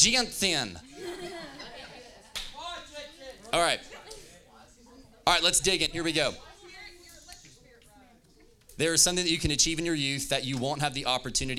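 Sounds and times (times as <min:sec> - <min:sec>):
speech: 0:00.0 - 0:00.9, 0:03.5 - 0:03.9, 0:05.3 - 0:06.5, 0:08.8 - 0:11.5
laughter: 0:00.8 - 0:02.4
slap on the back of someone's head: 0:02.3 - 0:02.6.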